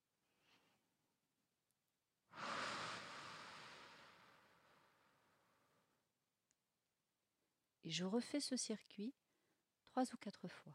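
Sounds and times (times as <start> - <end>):
long loud airy exhale through the mouth: 2.3 - 5.3
faint breath in through the nose: 2.3 - 5.8
speech: 7.9 - 9.2, 10.0 - 10.7.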